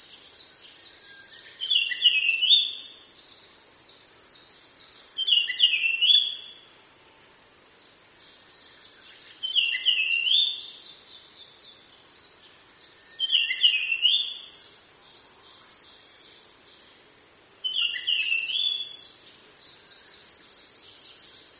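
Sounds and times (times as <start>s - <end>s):
Japanese grosbeak singing a short clear whistled phrase: 0.5s - 2.9s, 4.9s - 6.6s, 8.4s - 11.3s, 12.8s - 14.6s, 17.7s - 19.0s.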